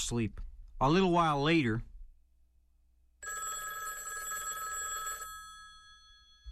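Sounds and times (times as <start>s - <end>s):
speech: 0.1s - 1.9s
telephone bell ringing: 3.2s - 6.4s.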